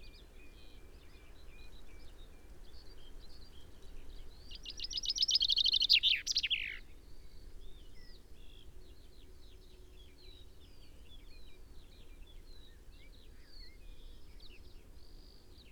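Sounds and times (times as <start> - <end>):
common chaffinch Fringilla coelebs singing: 4.5 - 6.8.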